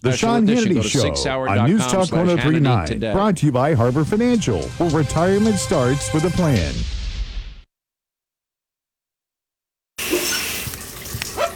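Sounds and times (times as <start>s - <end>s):
speech: 0.1s - 7.0s
shower water spraying: 10.0s - 11.5s.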